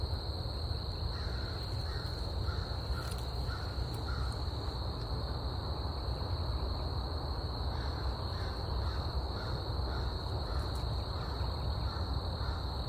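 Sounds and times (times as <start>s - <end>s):
crickets giving a constant high trill: 0.0s - 12.8s
crow giving soft caws on Scout Island: 1.1s - 4.4s, 7.8s - 12.7s.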